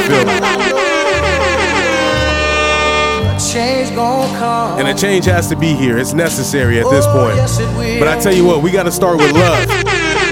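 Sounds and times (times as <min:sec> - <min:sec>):
air horn blaring: 0:00.0 - 0:03.6, 0:09.2 - 0:10.3
speech: 0:03.8 - 0:09.9.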